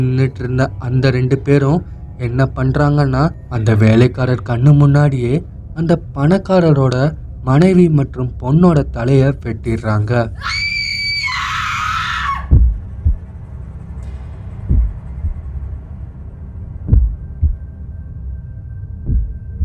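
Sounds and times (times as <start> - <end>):
speech: 0.0 - 10.6
low ominous hum: 0.0 - 19.6
woman screaming in terror: 10.4 - 12.6
slow heavy heartbeat-like thumps: 12.5 - 13.4, 14.6 - 15.6, 16.8 - 17.7, 19.0 - 19.6.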